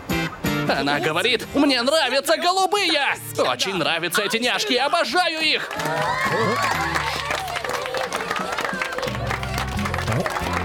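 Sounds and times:
speech: 0.7s - 7.1s
laughter: 0.7s - 10.6s
crowd applauding: 4.8s - 10.6s.

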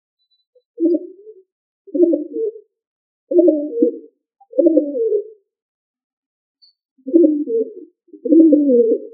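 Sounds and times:
pigeon cooing: 0.8s - 2.7s, 3.3s - 5.4s, 7.0s - 9.1s
speech: 8.7s - 9.1s.

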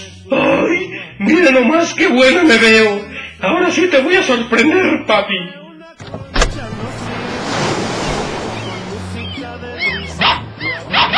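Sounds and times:
speech: 0.3s - 6.2s
broad rushing noise: 6.5s - 9.7s
dog barking: 10.2s - 11.1s.

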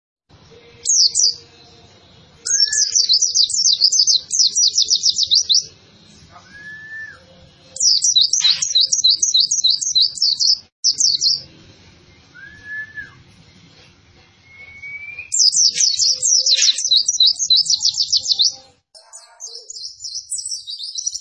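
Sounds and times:
lively-singing white-eye song: 0.3s - 13.8s, 14.4s - 21.1s
soft mid-pitched whistle: 6.4s - 7.3s, 12.3s - 13.2s, 14.4s - 16.5s.

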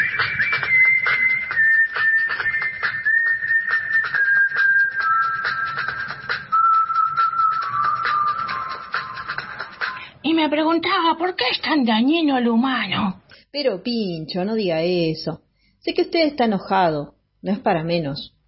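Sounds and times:
person whistling a favourite song while walking: 0.0s - 10.0s
speech: 10.4s - 18.4s.

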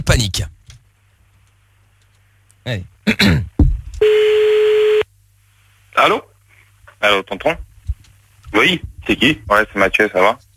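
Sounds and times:
speech: 0.0s - 0.6s, 2.6s - 4.3s, 6.0s - 6.3s, 7.0s - 7.7s, 8.5s - 10.4s
telephone line tone while a call is being dialed: 4.0s - 5.0s.

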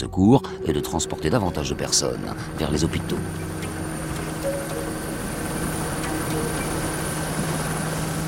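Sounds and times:
speech: 0.0s - 3.6s
air force Super Puma helicopter engines and rotor landing on stadium lawn: 0.9s - 8.2s.

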